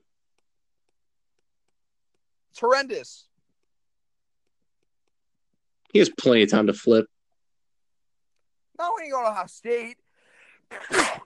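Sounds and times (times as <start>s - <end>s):
speech: 2.6s - 3.3s, 5.9s - 7.1s, 8.8s - 10.0s, 10.7s - 11.2s
person sneezing: 10.7s - 11.2s.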